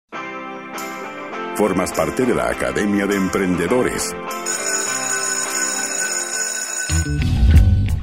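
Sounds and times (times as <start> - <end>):
speech: 1.6 - 4.7, 7.1 - 7.3
electric school bell ringing for class: 4.4 - 7.4.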